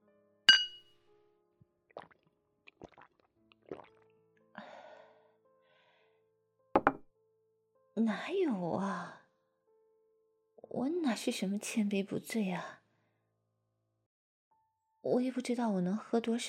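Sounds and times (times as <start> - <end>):
glasses clinking in a toast: 0.5 - 0.8
soft taps and knocks: 6.8 - 7.0
speech: 8.0 - 9.2, 10.8 - 12.8, 15.0 - 16.4.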